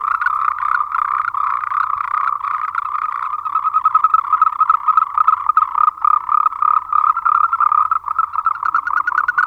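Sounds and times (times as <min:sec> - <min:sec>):
Moltrecht's green treefrog Rhacophorus moltrechti calling in pulsed croaking bursts: 0:00.0 - 0:09.4.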